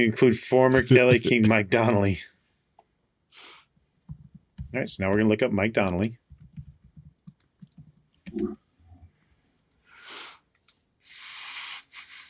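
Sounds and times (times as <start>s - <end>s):
speech: 0.0s - 2.3s, 3.3s - 3.6s, 4.7s - 6.2s
typing on a computer keyboard: 6.3s - 8.0s
hissing noise bursts: 11.0s - 12.2s.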